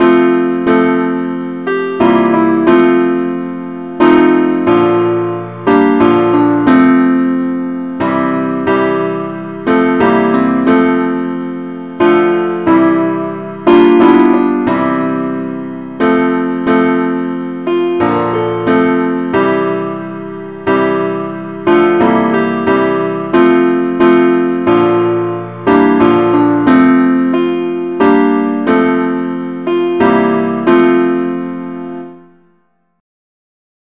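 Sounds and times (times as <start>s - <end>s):
simple musical accompaniment in F: 0.0s - 33.0s.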